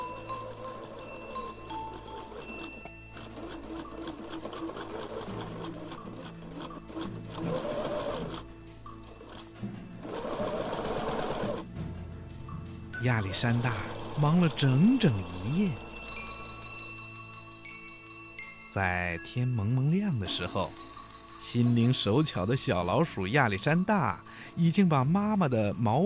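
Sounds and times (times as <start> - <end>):
sewing machine running: 0.0 - 8.5, 9.2 - 11.7, 13.2 - 16.8
speech: 13.0 - 15.8, 18.8 - 20.8, 21.4 - 26.0.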